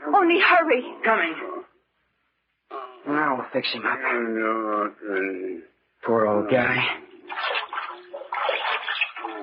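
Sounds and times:
speech: 0.1s - 1.6s, 3.0s - 7.0s
cold water pouring from a tap into a basin: 7.2s - 9.4s.

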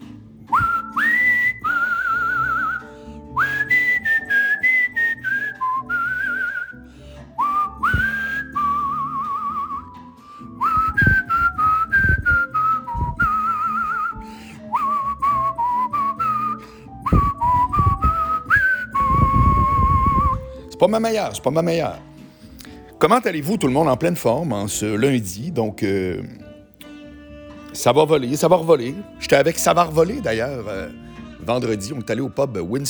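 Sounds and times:
busy instrumental backing music: 0.0s - 32.8s
person whistling a TV theme melody: 0.4s - 20.7s
speech: 20.9s - 22.1s, 23.0s - 26.4s, 27.8s - 32.8s.

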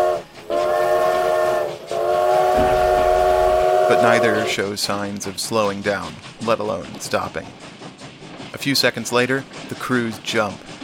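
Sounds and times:
steam train whistles blaring in a chord: 0.0s - 4.7s
low rumble of rolling trains: 0.0s - 10.8s
speech: 3.9s - 7.7s, 8.6s - 10.8s.

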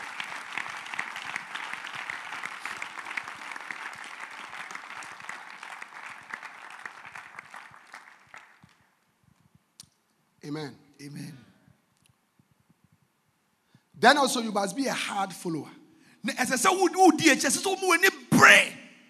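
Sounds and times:
church congregation clapping: 0.0s - 9.1s
speech: 10.5s - 11.5s, 14.0s - 18.8s.

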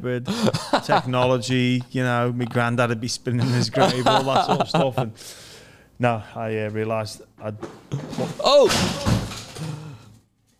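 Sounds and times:
speech: 0.0s - 9.9s
laughter: 0.3s - 1.4s, 3.4s - 5.2s
beer bottles knocked over: 7.7s - 9.8s.

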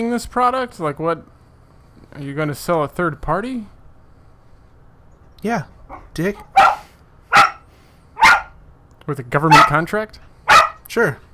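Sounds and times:
speech: 0.0s - 1.4s, 2.1s - 3.8s, 5.4s - 6.6s, 9.1s - 11.3s
sharp loud dog barks: 5.9s - 8.6s, 9.5s - 9.8s, 10.5s - 10.9s.

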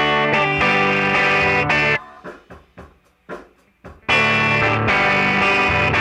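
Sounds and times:
mildly overdriven electric guitar chords with amp breaking up: 0.0s - 2.0s, 4.1s - 5.9s.

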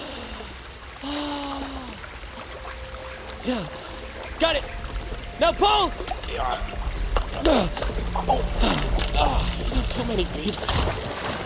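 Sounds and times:
river water flowing: 0.0s - 11.4s
voice-like tonal sound: 2.4s - 11.1s
speech: 3.4s - 3.8s, 4.4s - 4.8s, 5.4s - 6.7s, 7.4s - 11.4s.

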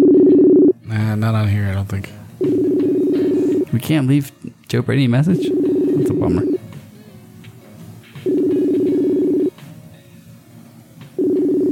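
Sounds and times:
ringback tone of an outgoing phone call: 0.0s - 0.8s, 2.4s - 3.7s, 5.4s - 6.6s, 8.2s - 9.5s, 11.2s - 11.7s
speech: 0.9s - 2.7s, 3.7s - 6.6s.

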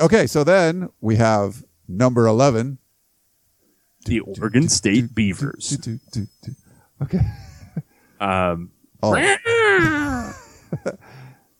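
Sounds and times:
speech: 0.0s - 2.8s, 4.0s - 11.2s
faint breathy sounds: 6.4s - 7.0s, 11.0s - 11.5s
person imitating a cat meow with their voice: 9.1s - 10.3s.

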